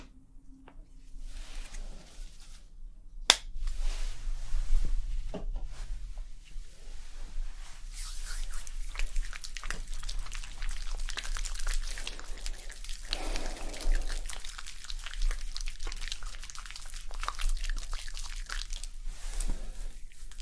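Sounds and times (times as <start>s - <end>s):
bright scratching and rubbing through hair: 1.2s - 2.8s, 3.6s - 20.4s
sharp snapping clicks: 3.3s - 3.5s
hair washing and scalp massage: 8.0s - 19.5s.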